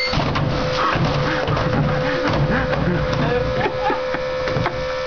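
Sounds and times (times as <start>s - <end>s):
garbage can: 0.1s - 3.8s
laughter: 0.8s - 4.9s.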